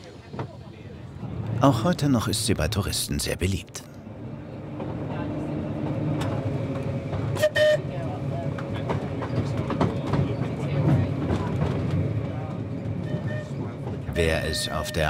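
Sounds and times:
faint voices murmuring: 0.0 - 15.0
historic tram rumbling and rattling along the rails on the Isle of Man: 0.0 - 15.0
speech: 1.6 - 3.8, 14.4 - 15.0
historic tram horn toot: 4.1 - 10.0, 13.0 - 15.0.

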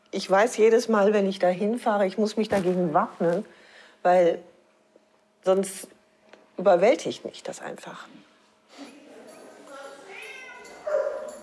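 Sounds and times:
speech: 0.1 - 4.5, 5.4 - 6.0, 6.6 - 8.3
dogs barking and yelping at an animal shelter: 9.9 - 11.4.

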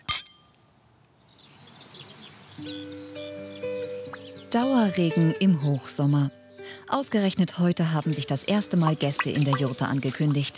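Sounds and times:
glasses clinking in a toast: 0.0 - 0.5
faint birdsong: 0.3 - 10.5
soft sustained musical tones: 2.5 - 10.5
speech: 2.6 - 3.4, 4.5 - 10.5.

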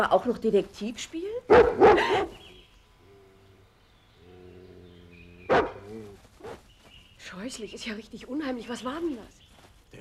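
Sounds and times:
speech: 0.0 - 2.4, 7.2 - 10.0
wild dog barking: 1.5 - 2.5, 4.9 - 6.6.

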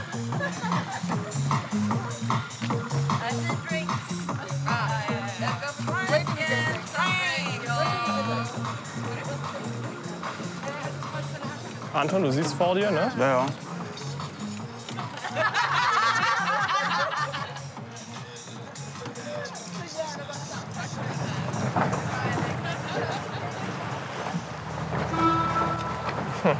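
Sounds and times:
people laughing by the water: 0.0 - 2.4, 4.3 - 10.2, 14.8 - 24.0, 26.2 - 26.5
people chattering by the water on a warm summer day: 0.0 - 26.5
speech: 0.3 - 2.8, 12.0 - 13.7
Alster steamer boat horn honking: 24.8 - 26.5.

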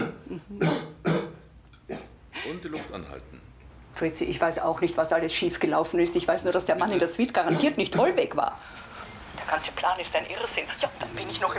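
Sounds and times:
coughing: 0.0 - 3.5, 7.4 - 8.2
speech: 2.5 - 8.9, 9.5 - 11.5.

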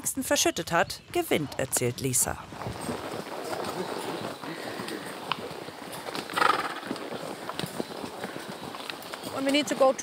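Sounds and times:
speech: 0.2 - 3.0, 9.4 - 10.0
Icelandic horse hooves clattering: 1.2 - 10.0
Icelandic horse whinnying: 6.1 - 7.1.

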